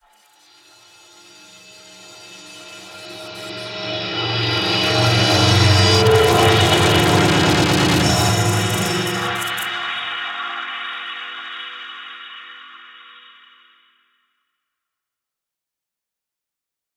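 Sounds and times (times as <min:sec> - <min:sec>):
entropic swelling stinger: 0:02.6 - 0:10.7.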